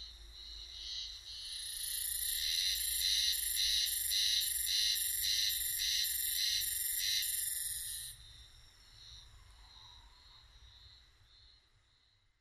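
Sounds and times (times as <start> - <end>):
spring cicada buzzing pulses: 0.8 - 8.2.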